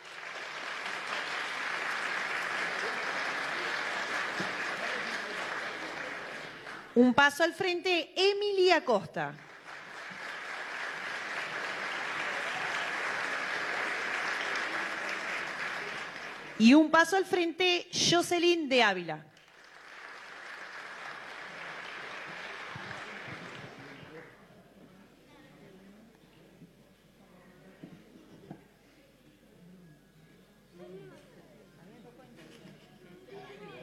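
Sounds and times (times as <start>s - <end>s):
audience applause: 0.0s - 7.0s, 9.4s - 16.6s, 19.4s - 24.2s
speech: 7.0s - 9.5s, 16.6s - 19.3s.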